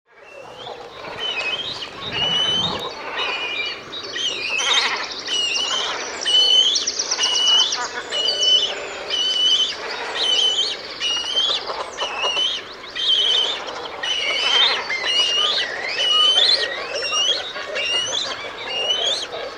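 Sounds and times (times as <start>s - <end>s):
cormorant calling: 0.2s - 19.5s.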